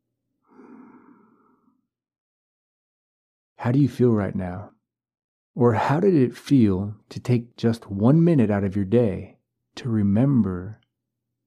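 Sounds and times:
slow deep breath in through nose and out through mouth: 0:00.4 - 0:01.9
speech: 0:03.6 - 0:04.8, 0:05.6 - 0:10.8.

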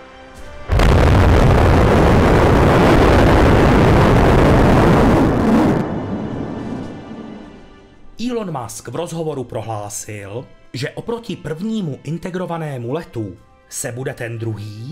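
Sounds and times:
static fire of six rocket engines roaring: 0:00.7 - 0:07.8
speech: 0:08.3 - 0:14.9.

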